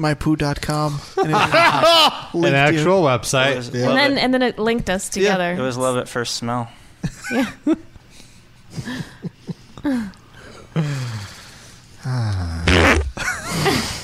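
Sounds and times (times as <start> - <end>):
speech: 0.0 - 7.9, 8.7 - 9.2, 9.8 - 10.2
laughter: 1.2 - 2.4, 7.0 - 9.8, 12.8 - 14.0
varied farts from sputtering pops to squeaky ones: 12.4 - 13.2.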